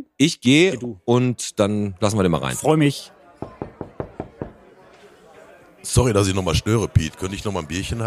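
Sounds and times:
speech: 0:00.2 - 0:03.2, 0:05.8 - 0:08.0
sharp knocks on a door: 0:03.4 - 0:04.6.

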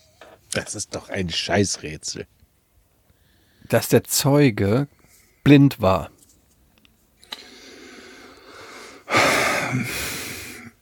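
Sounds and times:
speech: 0:00.6 - 0:02.4, 0:03.7 - 0:06.2
deep inhale: 0:07.3 - 0:10.8.

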